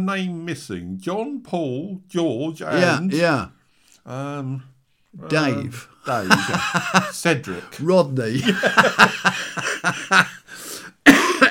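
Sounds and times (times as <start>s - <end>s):
speech: 0.0s - 11.2s
laughter: 5.3s - 11.4s
person's raspy breath: 10.4s - 11.0s
person coughing harshly: 11.0s - 11.4s.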